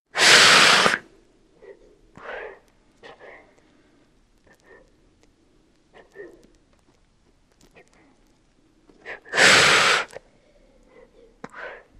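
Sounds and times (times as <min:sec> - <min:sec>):
beaded lizard breathing: 0:00.1 - 0:05.2, 0:09.0 - 0:11.9.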